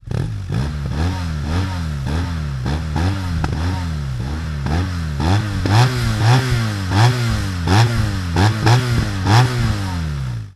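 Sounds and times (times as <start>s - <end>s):
hexa cone slip-on exhaust on BMW R1200 GS Adventure: 0.0s - 10.5s.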